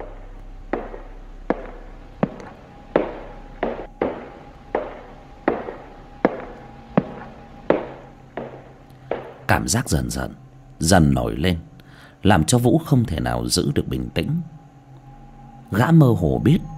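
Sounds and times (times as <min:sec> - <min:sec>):
footsteps at night behind a door: 0:00.0 - 0:10.4
faint low hum: 0:00.0 - 0:16.7
speech: 0:09.6 - 0:14.6, 0:15.7 - 0:16.7.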